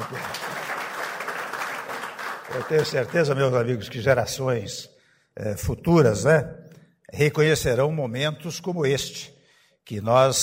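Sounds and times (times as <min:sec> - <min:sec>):
audience applause at an official speech event: 0:00.0 - 0:03.6
speech: 0:02.5 - 0:10.4.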